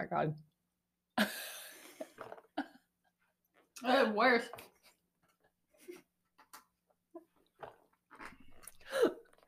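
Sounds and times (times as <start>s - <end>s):
speech: 0.0s - 0.5s, 1.2s - 1.4s, 3.8s - 4.7s
chewing a tough hard chewy snack: 7.4s - 9.4s.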